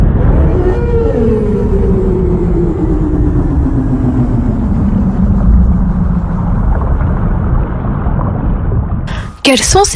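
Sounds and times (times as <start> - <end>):
whale song with descending moan: 0.0 - 8.0
dense steady underwater rumble: 0.0 - 9.2.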